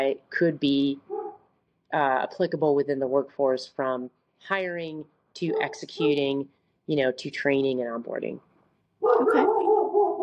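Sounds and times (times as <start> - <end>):
speech: 0.0 - 1.1, 1.9 - 9.6
dog giving a high whimpering whine: 5.6 - 6.3.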